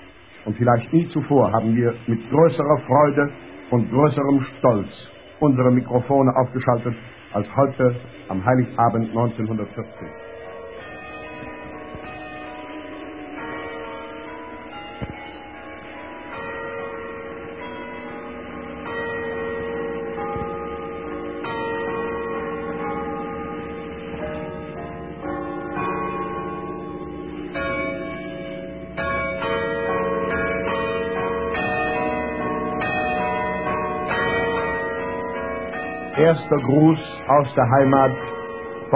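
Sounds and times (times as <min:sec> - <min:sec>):
speech: 0:00.4 - 0:10.3, 0:36.3 - 0:38.3
carillon bells in the tower of an old garrison church in Potsdam: 0:09.2 - 0:38.9.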